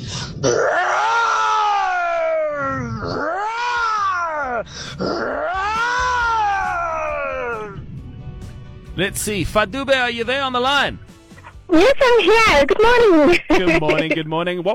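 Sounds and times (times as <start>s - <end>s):
speech: 0.4s - 0.8s, 9.0s - 11.1s, 11.7s - 14.7s
radio caller imitating a lion roar: 0.4s - 7.8s
laughter: 13.1s - 14.3s.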